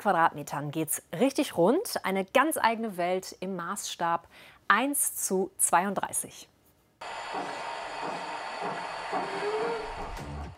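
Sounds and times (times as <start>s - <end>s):
speech: 0.0s - 7.7s
thin rising squeal of model railway train: 7.1s - 10.5s.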